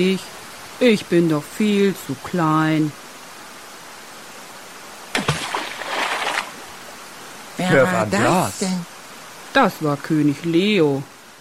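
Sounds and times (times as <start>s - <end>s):
speech: 0.0s - 3.0s, 7.6s - 8.9s, 9.5s - 11.1s
roaring waterfall: 0.0s - 11.3s.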